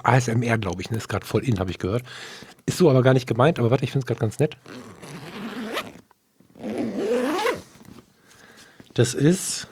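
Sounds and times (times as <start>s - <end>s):
speech: 0.0s - 5.2s, 9.0s - 9.7s
zipper on an Italian leather bag: 4.7s - 6.0s, 6.6s - 8.0s.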